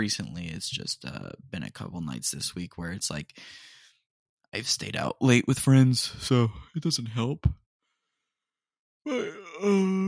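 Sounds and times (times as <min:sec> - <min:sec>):
speech: 0:00.0 - 0:03.7, 0:04.5 - 0:07.6, 0:09.0 - 0:10.0
person yawning during a stretch: 0:09.1 - 0:10.0.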